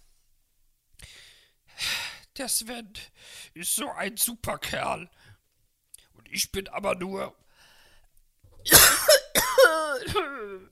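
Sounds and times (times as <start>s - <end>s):
speech: 2.4s - 5.3s, 6.2s - 7.4s, 10.0s - 10.7s
harsh coughing: 8.6s - 10.7s.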